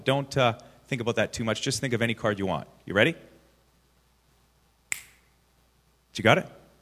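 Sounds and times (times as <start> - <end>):
speech: 0.0 - 3.3, 6.2 - 6.6
finger snap during a card trick: 4.9 - 5.3.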